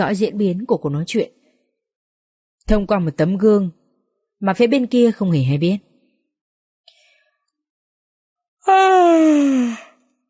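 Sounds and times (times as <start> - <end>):
speech: 0.0 - 1.4, 2.7 - 3.8, 4.4 - 5.9, 8.6 - 9.8
person yawning: 8.7 - 9.9.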